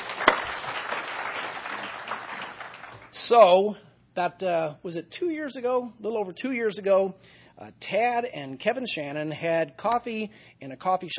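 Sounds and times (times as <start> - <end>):
single sharper louder clap: 0.0 - 1.8
audience applauding, many hands clapping: 0.0 - 3.2
speech: 3.1 - 11.1.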